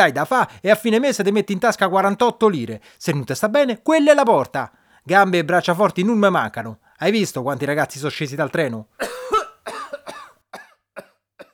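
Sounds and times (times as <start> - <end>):
speech: 0.0 - 9.8
man lying on the ground coughing: 9.0 - 11.5.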